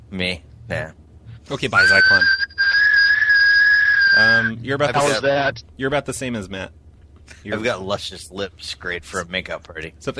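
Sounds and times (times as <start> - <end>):
speech: 0.1 - 2.4, 4.2 - 10.1
person whistling a sustained high note: 1.8 - 4.5.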